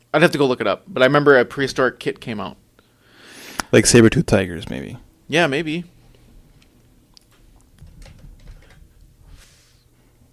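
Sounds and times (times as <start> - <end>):
speech: 0.1 - 2.6, 3.7 - 5.9
typing on a computer keyboard: 7.8 - 8.8.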